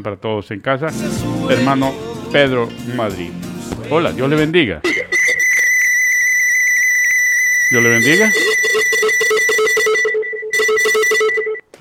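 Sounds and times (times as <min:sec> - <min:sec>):
speech: 0:00.0 - 0:05.0, 0:07.7 - 0:09.6
telephone ringing during a call: 0:04.9 - 0:11.7.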